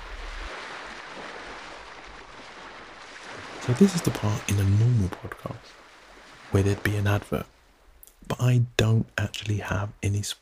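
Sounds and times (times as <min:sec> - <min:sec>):
ocean water washing against a ship's hull: 0:00.0 - 0:08.0
speech: 0:03.7 - 0:05.8, 0:06.5 - 0:07.6, 0:08.2 - 0:10.3.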